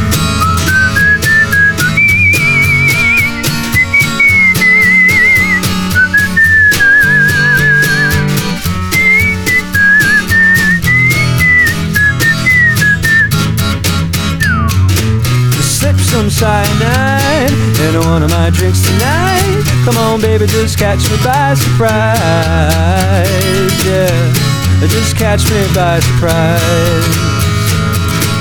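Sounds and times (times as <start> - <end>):
band bass: 0.0 - 28.3
steady band drums: 0.0 - 28.3
bright warbling whistled melody: 0.1 - 15.2
speech: 17.9 - 27.3.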